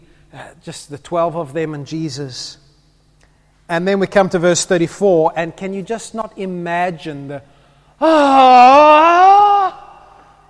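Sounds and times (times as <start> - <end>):
speech: 0.3 - 2.6, 3.7 - 9.4
voice imitating a groan of despair: 8.0 - 10.4.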